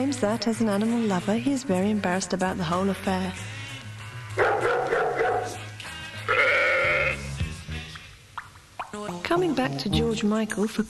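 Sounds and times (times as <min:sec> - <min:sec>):
speech: 0:00.0 - 0:03.6, 0:09.3 - 0:10.8
dog-like yelps: 0:04.4 - 0:05.6
sheep bleating: 0:06.1 - 0:07.4.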